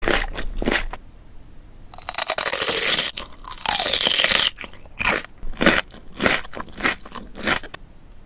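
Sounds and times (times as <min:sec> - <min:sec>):
person eating crunchy celery: 0:00.0 - 0:01.0, 0:01.9 - 0:07.8.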